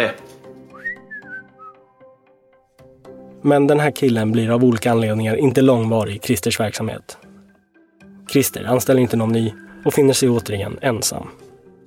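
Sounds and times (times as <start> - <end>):
speech: 0.0 - 0.2, 3.4 - 7.2, 8.3 - 11.5
person whistling a short melodic tune: 0.6 - 2.1.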